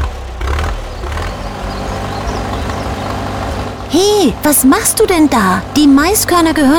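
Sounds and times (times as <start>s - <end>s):
heavy tractor engine rumbling while harvesting a corn field: 0.0s - 6.7s
speech: 3.9s - 6.7s.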